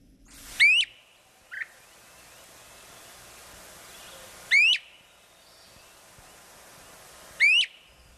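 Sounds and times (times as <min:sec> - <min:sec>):
steady outdoor hiss: 0:00.0 - 0:08.1
great crested flycatcher whistled calls: 0:00.6 - 0:02.4, 0:03.9 - 0:06.0, 0:07.4 - 0:08.1.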